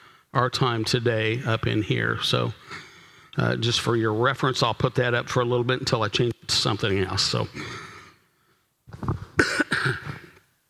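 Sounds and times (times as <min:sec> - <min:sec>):
speech: 0:00.4 - 0:02.8, 0:03.4 - 0:07.9
person coughing: 0:09.2 - 0:10.4.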